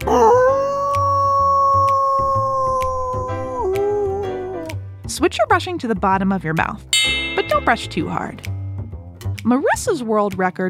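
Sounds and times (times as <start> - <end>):
child imitating a dog's howl for a record attempt: 0.0 - 4.7
speech: 5.2 - 8.5, 9.4 - 10.6
soft rhythmic beat: 7.0 - 8.4.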